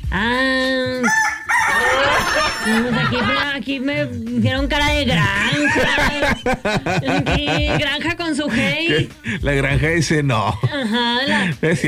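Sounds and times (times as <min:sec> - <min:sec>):
rooster crowing: 0:01.0 - 0:03.0
laughter: 0:01.7 - 0:03.6, 0:05.0 - 0:11.8
speech: 0:02.7 - 0:11.8.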